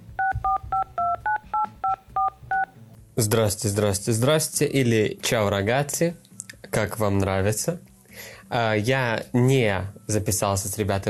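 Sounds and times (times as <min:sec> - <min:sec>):
short touch-tone beeps of a phone number being dialed: 0:00.2 - 0:02.7
speech: 0:03.2 - 0:06.2, 0:06.8 - 0:11.0.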